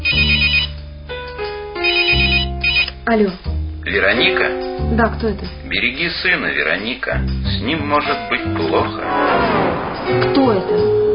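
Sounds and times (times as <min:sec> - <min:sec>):
home telephone ringing with an electronic trill: 0:00.0 - 0:00.8, 0:01.8 - 0:02.9
speech: 0:03.1 - 0:10.8.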